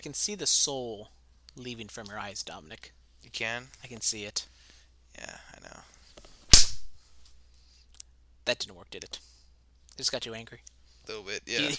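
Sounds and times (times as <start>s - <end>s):
speech: 0.0s - 4.5s, 5.2s - 5.9s, 8.5s - 9.3s, 10.0s - 11.7s
hand slap: 6.5s - 7.0s.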